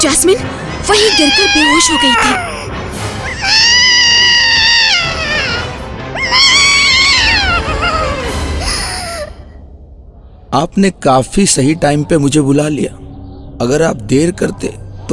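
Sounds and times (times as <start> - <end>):
speech: 0.0 - 2.7, 10.5 - 15.1
loud sustained wailing cries: 0.9 - 9.4.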